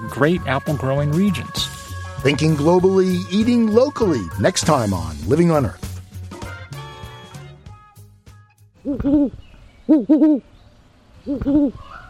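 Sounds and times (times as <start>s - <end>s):
speech: 0.1s - 5.8s, 9.0s - 10.5s, 11.2s - 12.0s
great horned owls hooting: 8.8s - 10.5s, 11.2s - 12.0s.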